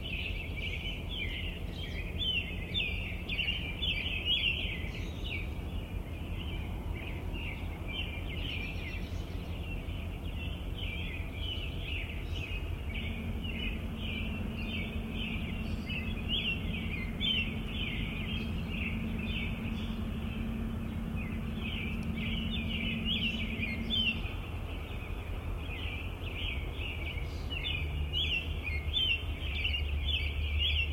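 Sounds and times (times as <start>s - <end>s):
birds in a city: 0.0s - 30.9s
city ambience: 0.0s - 30.9s.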